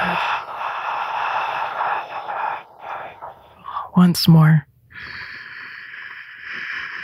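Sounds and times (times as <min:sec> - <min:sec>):
slow steady exhale during a guided belly-breathing exercise: 0:00.0 - 0:03.9, 0:04.9 - 0:07.0
speech: 0:04.0 - 0:05.2.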